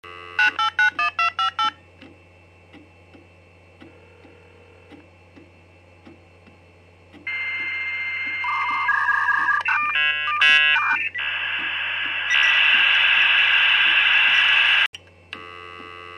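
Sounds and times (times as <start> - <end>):
modem: 0.0 - 16.1.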